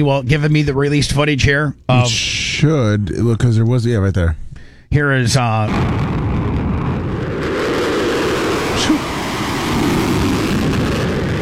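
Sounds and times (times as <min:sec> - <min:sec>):
speech: 0:00.0 - 0:06.2
fighter jet roaring with afterburners lit: 0:05.7 - 0:11.3.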